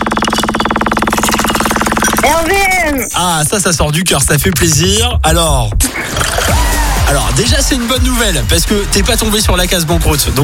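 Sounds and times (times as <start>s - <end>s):
prize wheel spinning during a radio call-in game: 0.0s - 3.0s
speech: 2.2s - 6.3s, 7.1s - 10.4s.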